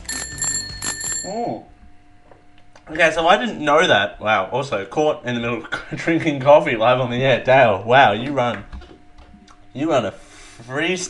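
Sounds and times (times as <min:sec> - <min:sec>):
bicycle bell ringing: 0:00.0 - 0:01.5
speech: 0:01.3 - 0:01.8, 0:02.9 - 0:08.7, 0:09.8 - 0:11.0.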